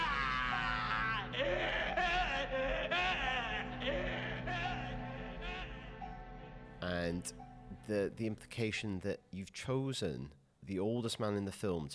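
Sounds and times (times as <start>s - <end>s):
man letting out a long anguished scream: 0.0s - 6.0s
speech: 7.0s - 11.9s.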